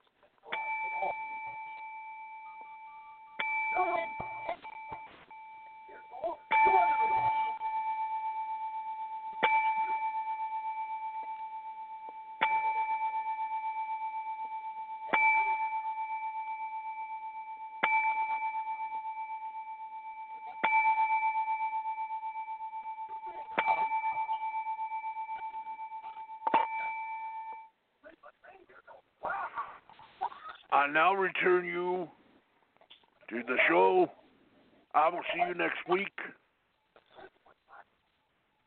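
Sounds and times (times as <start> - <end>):
clear bell ringing: 0.5 - 27.8
speech: 30.8 - 32.2, 33.3 - 34.2, 35.0 - 36.2.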